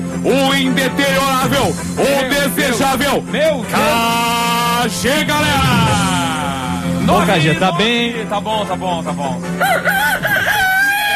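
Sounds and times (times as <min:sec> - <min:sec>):
speech: 0:00.2 - 0:10.2
man imitating rooster crowing: 0:09.6 - 0:11.1.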